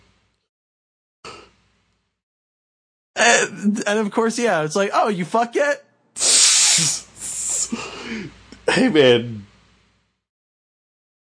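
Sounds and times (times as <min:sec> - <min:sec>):
speech: 0:03.2 - 0:05.9, 0:06.8 - 0:07.0, 0:08.1 - 0:09.5
cat hissing: 0:06.2 - 0:07.9.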